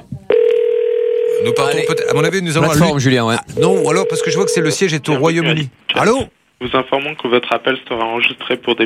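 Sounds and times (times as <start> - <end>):
sustained telephone tone: 0.3 - 2.2, 3.5 - 4.9
speech: 1.6 - 8.8.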